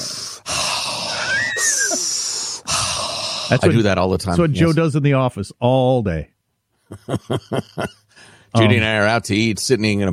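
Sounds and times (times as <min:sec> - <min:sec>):
person breathing in and out deliberately as mindful breathing: 0:00.0 - 0:03.6, 0:08.1 - 0:08.6
laughter: 0:01.3 - 0:02.1, 0:06.9 - 0:08.0
speech: 0:03.5 - 0:10.1.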